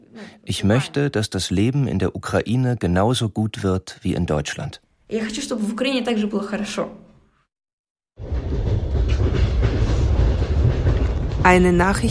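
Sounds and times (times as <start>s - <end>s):
speech: 0.2s - 7.0s, 11.4s - 12.0s
train travelling to Kharkiv rolling on rails: 8.2s - 12.0s.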